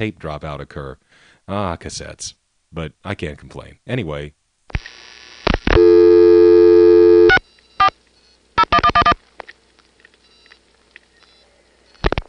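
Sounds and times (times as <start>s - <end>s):
speech: 0.0s - 5.0s
faint telephone line noise and clicks: 4.7s - 12.2s
telephone trunk line tones on a call to Quantico, Virginia: 5.7s - 7.9s, 8.6s - 9.2s.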